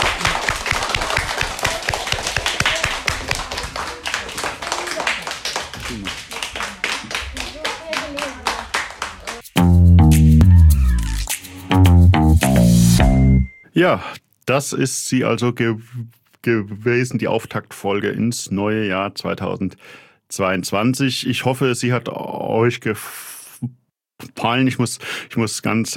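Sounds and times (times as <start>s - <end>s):
applause for school students: 0.0s - 9.5s
music: 9.4s - 13.5s
speech: 13.8s - 25.9s.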